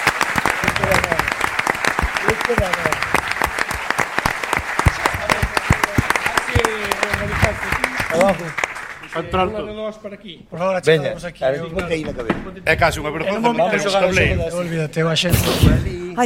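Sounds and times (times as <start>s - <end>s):
live audience applause: 0.0s - 9.5s
speech: 2.5s - 3.1s, 8.2s - 8.6s, 9.2s - 16.2s.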